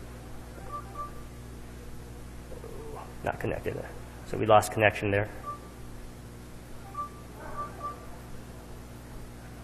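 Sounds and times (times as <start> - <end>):
payment card reader beeps: 0.6 - 1.2, 5.4 - 5.7, 6.8 - 8.1
speech: 3.2 - 5.4.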